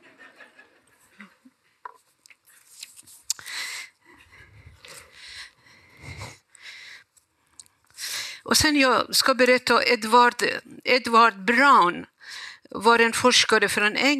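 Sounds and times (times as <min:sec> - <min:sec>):
laughter: 0:00.0 - 0:01.5
person sipping water: 0:02.1 - 0:06.6, 0:07.4 - 0:08.0
person sniffing: 0:02.6 - 0:07.1, 0:08.0 - 0:08.4
person gulping: 0:04.6 - 0:05.2
speech: 0:08.5 - 0:12.1, 0:12.7 - 0:14.1.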